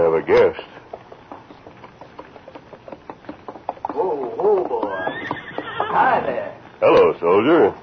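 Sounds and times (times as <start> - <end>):
clip-clop of horse hoofbeats approaching: 0.0 - 7.8
speech: 0.2 - 0.8, 6.0 - 7.8
horse letting out a loud rising whinny: 3.8 - 6.6.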